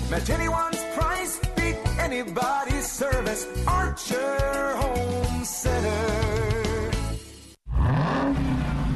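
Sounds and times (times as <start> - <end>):
speech: 0.1 - 1.4, 2.1 - 6.6
supercharged 6.2-liter Hemi V8 car engine accelerating: 7.7 - 8.9.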